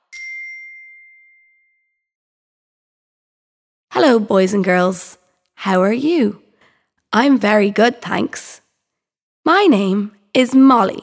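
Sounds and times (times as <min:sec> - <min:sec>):
bell ding: 0:00.0 - 0:02.0
speech: 0:04.0 - 0:06.4, 0:07.1 - 0:08.6, 0:09.4 - 0:11.0.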